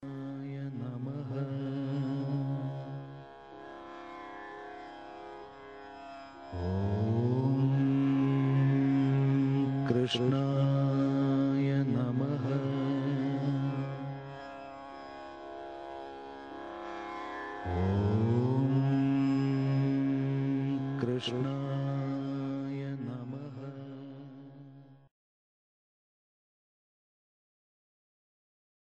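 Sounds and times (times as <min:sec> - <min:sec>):
devotional mantra chanting: 0:00.0 - 0:03.3, 0:06.5 - 0:15.6, 0:16.8 - 0:25.1.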